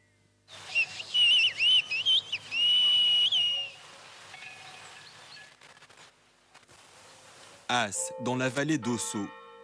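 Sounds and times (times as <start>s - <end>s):
faint hiss: 0.0s - 9.6s
whistled language of Béarnais shepherds: 0.7s - 3.8s
speech: 7.7s - 9.4s.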